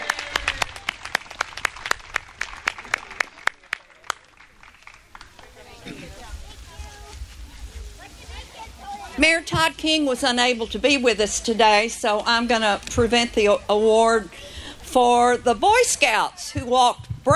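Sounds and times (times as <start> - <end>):
hand claps from a small crowd: 0.0 - 5.7
murmur of voices: 2.8 - 17.3
speech: 9.2 - 17.3.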